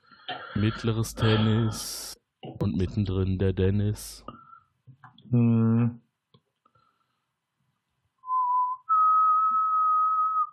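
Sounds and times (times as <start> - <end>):
speech: 0.6 - 4.3, 5.3 - 6.0
person whistling: 8.3 - 10.5.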